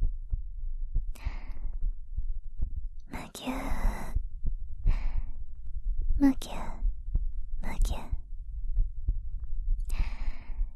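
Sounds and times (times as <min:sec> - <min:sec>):
heartbeat thumping: 0:00.0 - 0:10.7
speech: 0:06.2 - 0:06.7.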